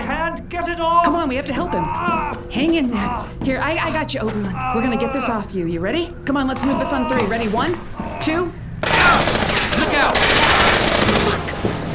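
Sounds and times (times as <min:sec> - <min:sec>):
speech: 0:00.5 - 0:09.3
rapid sustained gunfire in a fight: 0:08.8 - 0:11.5.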